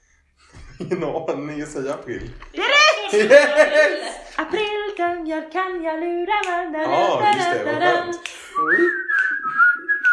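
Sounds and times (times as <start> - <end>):
speech: 0.8 - 9.0
laughter: 2.4 - 4.8
person whistling one breathy upward-sliding note: 8.3 - 10.1.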